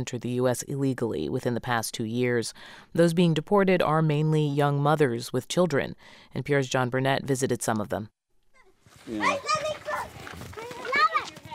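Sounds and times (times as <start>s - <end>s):
speech: 0.0s - 8.2s, 9.0s - 9.6s
children's high-pitched voices calling and chattering outside: 8.5s - 11.5s
faint shuffling steps: 8.6s - 11.5s.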